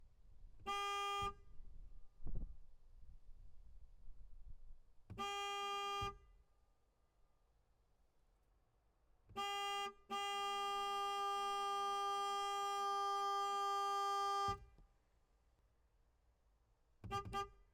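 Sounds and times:
2016 Alfa Romeo 4C horn heard from the interior: 0.6s - 1.6s, 5.1s - 6.3s, 9.3s - 14.7s, 17.1s - 17.6s.

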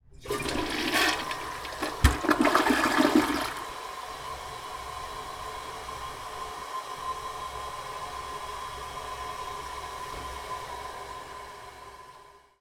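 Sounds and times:
American distant toilet flushing with lid up: 0.0s - 4.0s.

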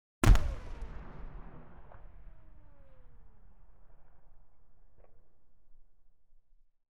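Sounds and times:
Chieftain armour firing in warfare: 0.2s - 3.5s.

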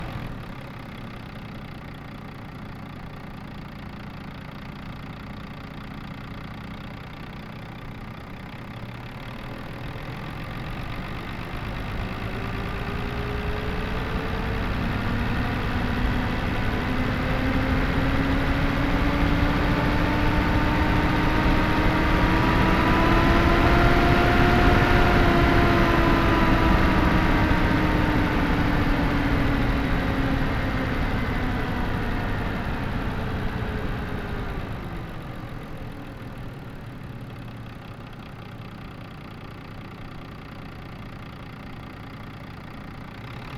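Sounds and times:
Volvo FM10 truck stopping and engine switching off: 9.3s - 37.3s.

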